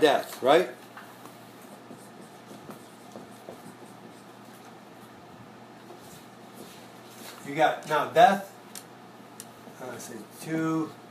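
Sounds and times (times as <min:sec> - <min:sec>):
speech: 0:00.0 - 0:00.8, 0:07.5 - 0:08.5, 0:09.8 - 0:11.0
steady hum: 0:00.0 - 0:11.0
writing strokes scratching: 0:01.7 - 0:04.4.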